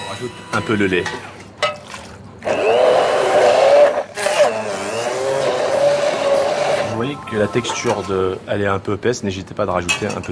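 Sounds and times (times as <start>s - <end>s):
speech: 0.2s - 1.4s, 7.3s - 10.2s
immersion blender pureeing Jerusalem artichokes in a saucepan: 2.4s - 7.1s.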